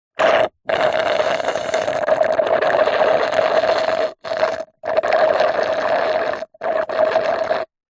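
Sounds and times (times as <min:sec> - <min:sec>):
sucking thick milkshake dregs through a straw: 0:00.1 - 0:07.8.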